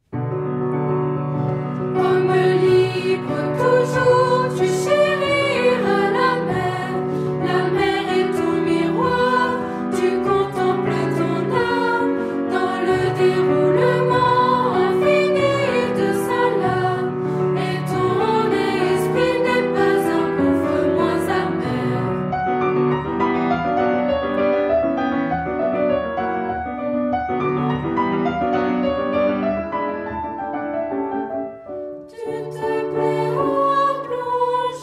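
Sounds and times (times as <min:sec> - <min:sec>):
piano: 0:00.0 - 0:34.8
chanting: 0:02.0 - 0:22.1, 0:32.1 - 0:34.8.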